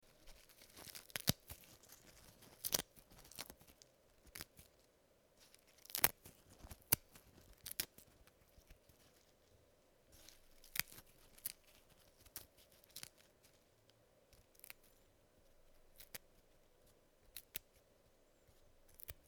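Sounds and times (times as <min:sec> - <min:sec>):
mint leaves tearing: 0:00.3 - 0:04.7, 0:05.5 - 0:08.2, 0:10.3 - 0:13.2, 0:15.9 - 0:16.2.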